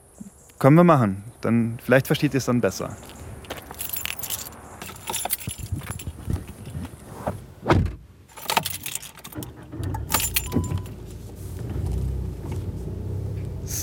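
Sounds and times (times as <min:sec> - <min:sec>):
speech: 0:00.6 - 0:03.1
low car engine rumble as the car pulls away in a parking lot: 0:01.3 - 0:13.8
keys jingling and rattling: 0:03.0 - 0:07.1, 0:08.3 - 0:11.0
car door thudding shut: 0:05.8 - 0:08.8.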